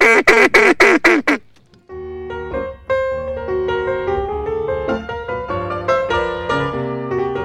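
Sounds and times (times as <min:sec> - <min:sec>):
duck call quacks blown by people practicing at night: 0:00.0 - 0:01.4
steady instrumental music: 0:01.5 - 0:07.4.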